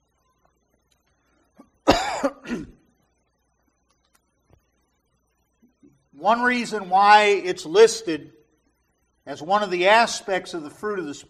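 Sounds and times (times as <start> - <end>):
harsh cough: 1.6 - 2.8
rough throat clearing: 1.6 - 2.8
speech: 6.2 - 8.4, 9.3 - 11.2.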